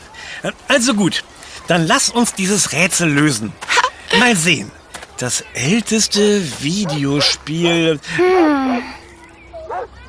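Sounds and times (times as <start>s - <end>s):
laughter: 0.0s - 9.0s
speech: 0.4s - 9.0s
dog yelping and yipping while playing frisbee in a park: 9.6s - 9.9s.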